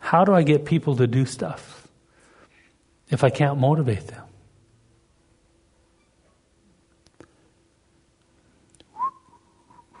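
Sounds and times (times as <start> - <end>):
speech: 0.1 - 1.8, 3.1 - 4.3
person whistling a brief warning-like tune: 8.9 - 9.9.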